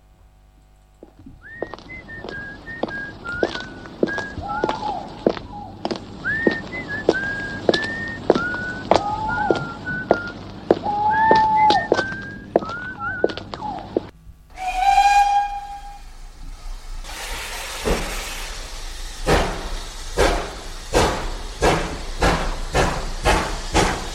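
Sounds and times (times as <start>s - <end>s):
train steam hissing: 1.0s - 24.1s
short whistled chirps: 1.4s - 13.8s
train steam whistle blast signalling departure: 2.0s - 12.4s, 14.5s - 24.1s.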